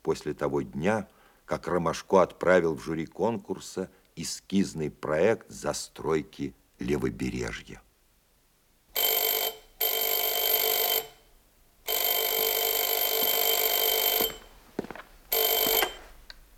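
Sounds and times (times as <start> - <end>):
speech: 0.0 - 7.8
telephone bell ringing: 8.9 - 14.6, 15.3 - 16.2.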